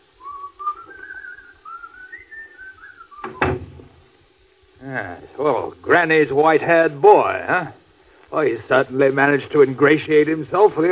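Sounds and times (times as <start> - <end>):
person whistling a wavering tune: 0.2 - 3.5
door closing with a solid thud: 3.2 - 4.0
speech: 4.8 - 10.8.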